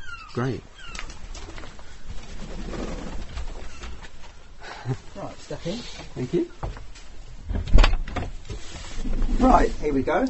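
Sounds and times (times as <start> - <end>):
dove-like cooing and calls of birds in an aviary: 0.0 - 4.8
steady rustling noisy background in an aviary: 0.0 - 10.2
speech: 0.4 - 1.0, 4.8 - 6.9, 9.4 - 10.2.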